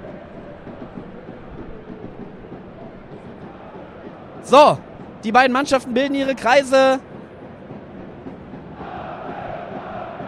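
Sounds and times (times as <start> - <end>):
large football stadium crowd cheering and chanting before kickoff: 0.0 - 10.2
speech: 4.4 - 7.1.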